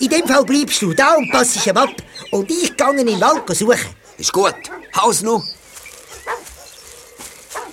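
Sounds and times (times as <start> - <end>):
speech: 0.0 - 5.6
dog barking: 2.9 - 5.0, 6.0 - 7.7.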